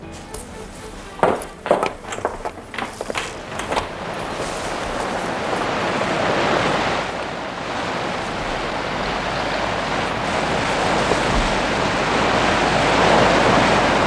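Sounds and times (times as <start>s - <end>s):
rustling: 0.0s - 6.8s
ocean waves crashing: 0.0s - 14.0s
strong wind roaring: 1.2s - 14.0s.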